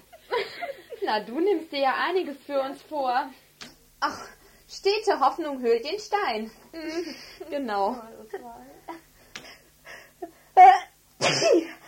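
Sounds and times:
laughter: 0.0s - 1.1s
speech: 1.1s - 3.4s, 4.0s - 8.8s
person sneezing: 10.6s - 11.8s.

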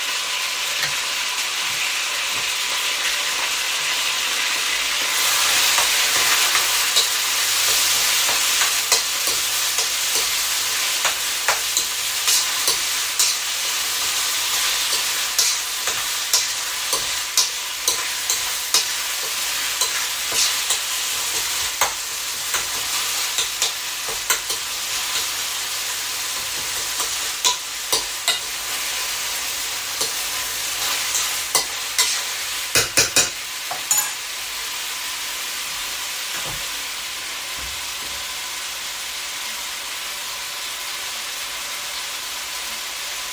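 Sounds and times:
meat searing in a hot frying pan: 0.0s - 43.3s.

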